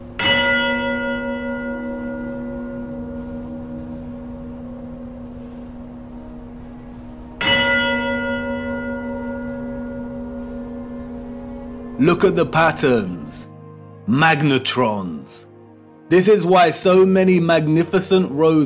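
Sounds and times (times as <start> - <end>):
deep bell strikes within a large structure: 0.0 - 13.4
speech: 12.0 - 13.5, 14.1 - 15.5, 16.1 - 18.6.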